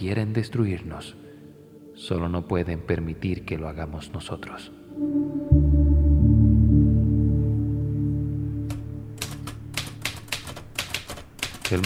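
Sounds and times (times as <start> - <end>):
speech: 0.0 - 1.3, 2.0 - 5.6
low steady droning hum: 4.9 - 9.8
manual typewriter clacking in a windowless office: 9.2 - 11.8.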